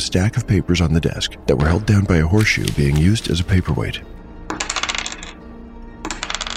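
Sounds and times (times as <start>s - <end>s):
speech: 0.0s - 4.1s
coins rattling and sliding inside a heavy metal box from a desk drawer: 4.5s - 5.4s, 6.1s - 6.5s.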